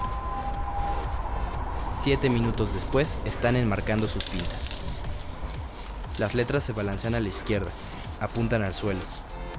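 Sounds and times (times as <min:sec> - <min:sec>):
ambulance siren: 0:00.0 - 0:05.4
low rumble of traffic: 0:00.0 - 0:09.3
speech: 0:02.0 - 0:04.8, 0:06.2 - 0:09.2.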